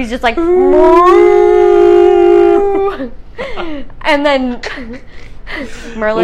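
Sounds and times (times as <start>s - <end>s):
speech: 0.0s - 1.9s, 2.9s - 6.2s
human voice imitating a whale call: 0.4s - 3.0s.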